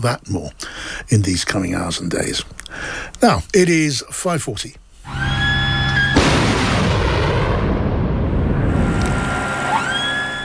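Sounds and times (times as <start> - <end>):
speech: 0.0 - 4.8
wailing air raid siren in Ukraine: 5.1 - 6.3, 8.4 - 10.4
Patriot air defence missile fired to intercept ballistic missile: 6.1 - 10.3.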